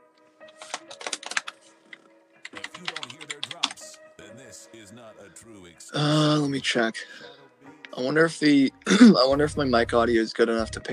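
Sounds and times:
rapid clacking of a mechanical keyboard: 0:00.6 - 0:01.6, 0:02.4 - 0:03.9
speech: 0:04.6 - 0:07.4, 0:08.0 - 0:10.9.

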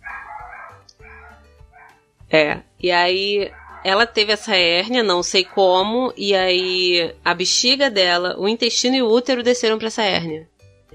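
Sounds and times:
dogs barking: 0:00.0 - 0:02.0, 0:03.2 - 0:06.8
speech: 0:02.3 - 0:10.9.

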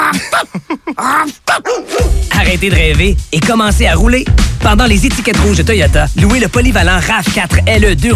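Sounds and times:
dog barking and yelping: 0:00.1 - 0:02.3
speech: 0:02.6 - 0:08.1.

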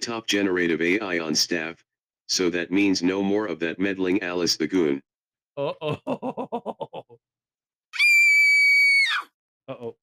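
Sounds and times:
speech: 0:00.0 - 0:07.3, 0:09.7 - 0:10.0
laughter: 0:05.6 - 0:07.2
person screaming high-pitched: 0:08.0 - 0:09.3.

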